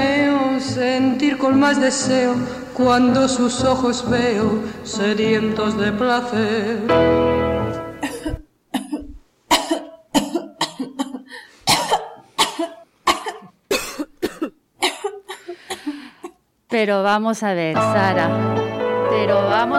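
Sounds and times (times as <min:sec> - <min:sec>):
speech: 0:00.8 - 0:07.3, 0:16.8 - 0:19.7
woman who smoked cigarettes and cigars coughing harshly: 0:08.0 - 0:16.4.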